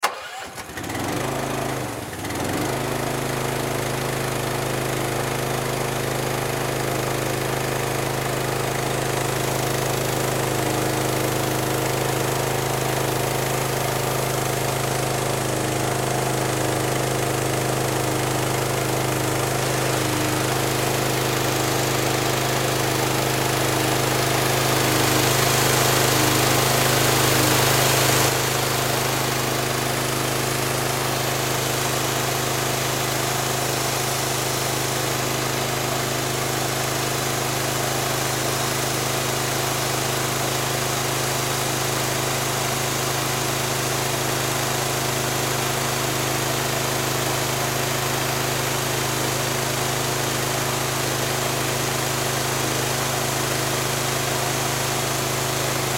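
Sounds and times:
power washer running: 0:00.0 - 0:55.9.

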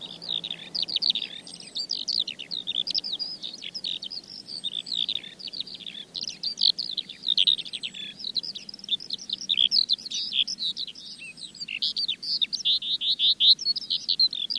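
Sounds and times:
wind gusts: 0:00.0 - 0:09.5
faint low hum: 0:00.0 - 0:11.8
Eurasian skylark singing in flight: 0:00.0 - 0:14.5.

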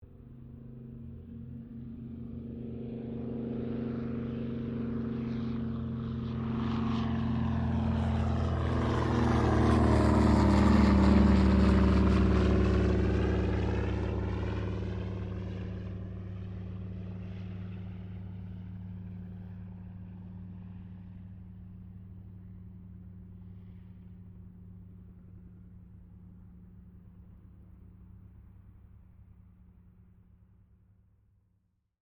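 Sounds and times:
Douglas DC3 aircraft takeoff: 0:00.1 - 0:27.2.

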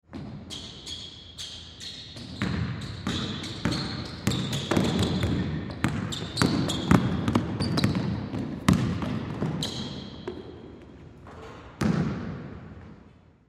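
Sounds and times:
shoe squeaks: 0:00.5 - 0:05.3, 0:06.0 - 0:08.1, 0:09.6 - 0:10.4
game basketball bouncing hard: 0:02.2 - 0:10.6, 0:11.2 - 0:12.8.

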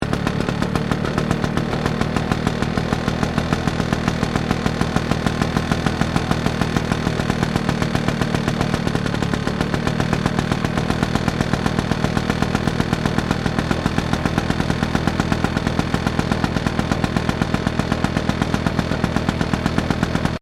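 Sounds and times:
old lawn mower idling high: 0:00.0 - 0:20.4.

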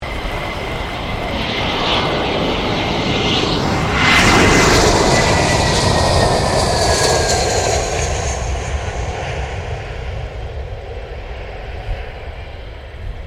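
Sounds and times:
Airbus A320 airplane landing: 0:00.0 - 0:13.2.

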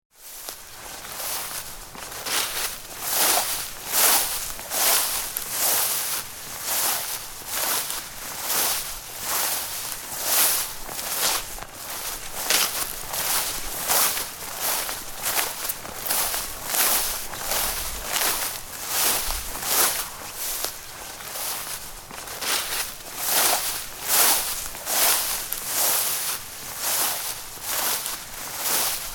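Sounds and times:
human footsteps walking through long grass: 0:00.2 - 0:29.1.

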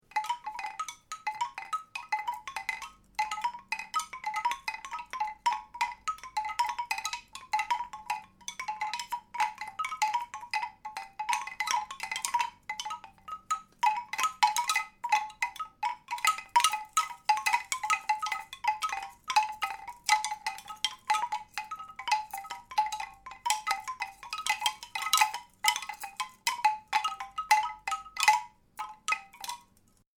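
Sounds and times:
wooden wind chimes clinking and clacking: 0:00.0 - 0:30.1.

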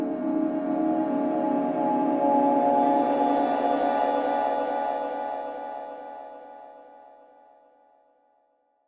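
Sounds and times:
dark horror cymbal swell: 0:00.1 - 0:07.1.

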